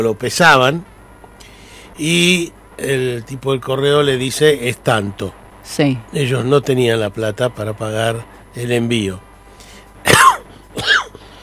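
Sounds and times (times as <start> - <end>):
speech: 0.0 - 0.9, 2.0 - 9.3
adult with a slight cough coughing: 10.1 - 11.3.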